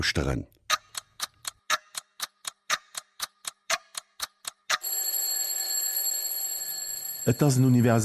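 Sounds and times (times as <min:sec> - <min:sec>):
speech: 0:00.0 - 0:00.6, 0:07.2 - 0:08.0
clock ticking: 0:00.6 - 0:05.2, 0:07.2 - 0:08.0
alarm bell ringing: 0:04.8 - 0:08.0.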